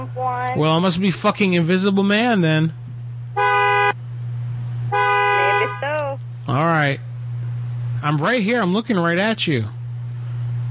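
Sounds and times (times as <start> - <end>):
low engine hum: 0.0 - 10.6
speech: 0.5 - 2.8, 6.8 - 7.1, 8.0 - 9.8
car horn honking: 3.3 - 4.0, 4.8 - 6.1.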